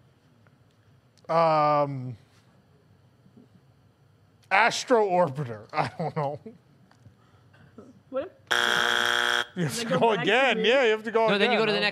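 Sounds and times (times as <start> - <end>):
speech: 1.3 - 2.2, 4.5 - 6.6, 8.1 - 8.9, 9.6 - 11.9
game show buzzer: 8.5 - 9.7.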